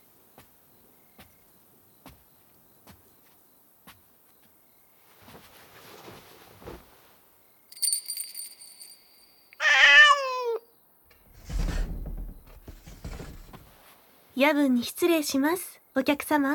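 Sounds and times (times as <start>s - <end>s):
soft rustling: 0.0s - 9.3s, 11.1s - 15.6s
chime-like tone: 7.8s - 9.6s
Bengal cat meowing: 9.6s - 10.7s
thuds: 11.1s - 13.9s
speech: 14.4s - 16.5s.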